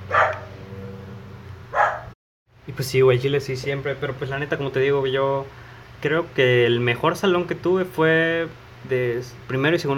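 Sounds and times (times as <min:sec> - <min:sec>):
dog barking: 0:00.0 - 0:00.6, 0:01.7 - 0:02.2
speech: 0:02.7 - 0:09.9.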